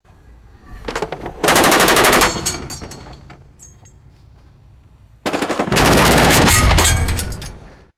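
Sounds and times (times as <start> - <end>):
short bursts of bullets hitting hollow metal: 1.4 - 7.7.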